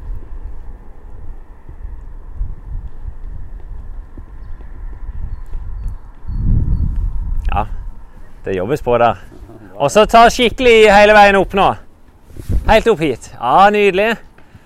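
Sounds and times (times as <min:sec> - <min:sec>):
hoofbeats of a horse galloping and jumping: 0:00.0 - 0:07.1
rumbling noise: 0:00.0 - 0:14.6
speech: 0:08.4 - 0:11.8, 0:12.7 - 0:14.3.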